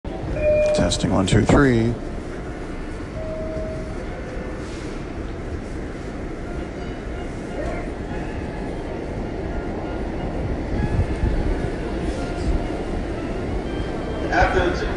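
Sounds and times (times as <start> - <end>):
moving subway car rumble and roar with rattling and hiss: 0.0 - 14.9
speech: 0.8 - 2.1
faint indistinct voices: 3.5 - 14.9.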